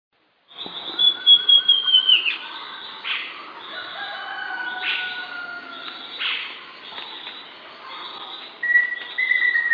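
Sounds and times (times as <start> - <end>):
Southern Chestnut-tailed Antbird Myrmeciza hemimelaena hemimelaena calling high whistled notes: 0.6 - 2.4, 8.6 - 9.7.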